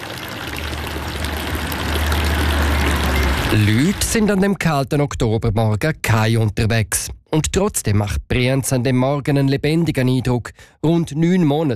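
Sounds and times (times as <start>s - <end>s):
village fountain water splashing and trickling: 0.0s - 4.3s
speech: 3.5s - 11.7s.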